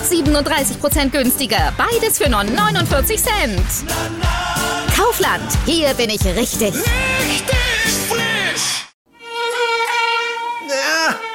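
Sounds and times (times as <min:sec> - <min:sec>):
speech: 0:00.1 - 0:08.0
mosquito buzzing: 0:09.2 - 0:11.3.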